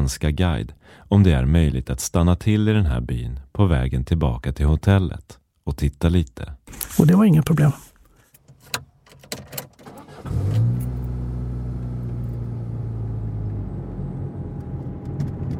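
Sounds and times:
speech: 0:00.0 - 0:07.8
minibus engine rumbling on a bumpy country road: 0:10.0 - 0:15.5.

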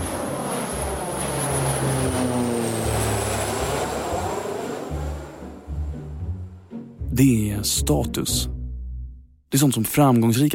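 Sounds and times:
propeller airplane droning overhead: 0:00.0 - 0:07.1
speech: 0:07.2 - 0:08.6, 0:09.5 - 0:10.5.

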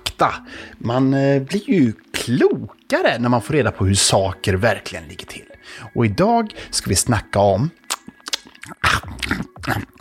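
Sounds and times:
speech: 0:00.2 - 0:07.8
loud wet exaggerated chewing of gum: 0:07.8 - 0:10.0.

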